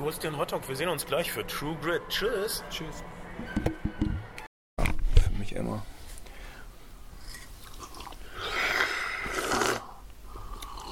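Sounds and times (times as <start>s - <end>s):
speech: 0.0s - 3.8s, 5.6s - 6.0s
quiet breathing: 5.8s - 7.5s, 8.1s - 10.8s
slurping instant hot cocoa: 7.2s - 10.8s
small mouth sounds: 7.2s - 10.8s.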